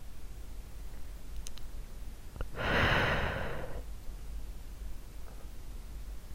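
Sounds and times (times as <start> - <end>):
soft breath blown into an ear: 2.5 - 3.9.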